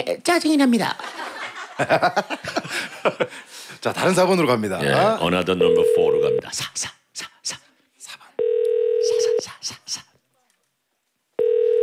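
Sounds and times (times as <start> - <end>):
speech: 0.0 - 1.2, 1.8 - 7.6
laughter: 1.0 - 4.4
unanswered telephone ringback tone: 5.6 - 6.4, 8.4 - 9.4, 11.4 - 11.8.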